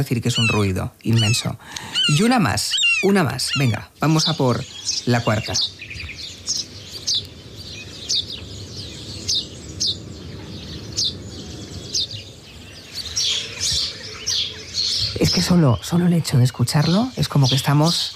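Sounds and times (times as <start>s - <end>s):
speech: 0.0s - 6.6s, 15.4s - 18.1s
house sparrow calling with short bright chirps: 0.0s - 18.1s.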